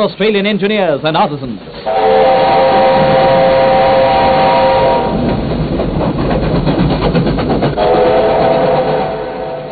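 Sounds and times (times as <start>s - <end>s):
speech: 0.0s - 2.2s
38 class steam locomotive roaring past in Australia: 1.8s - 9.7s
steam locomotive whistle sounding a long steady tone: 1.9s - 5.2s, 7.8s - 9.7s.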